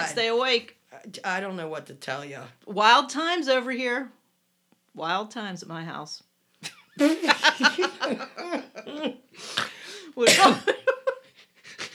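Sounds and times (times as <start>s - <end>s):
speech: 0.0s - 4.2s, 5.0s - 11.2s
person laughing with snorting coughing bursts: 6.6s - 9.9s, 10.6s - 11.9s.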